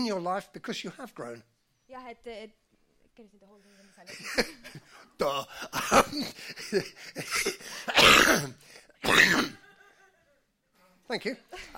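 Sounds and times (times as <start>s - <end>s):
speech: 0.0s - 2.6s, 3.2s - 9.6s, 11.1s - 11.7s
person coughing: 4.2s - 9.6s
person clearing throat: 5.2s - 6.4s, 7.2s - 9.6s.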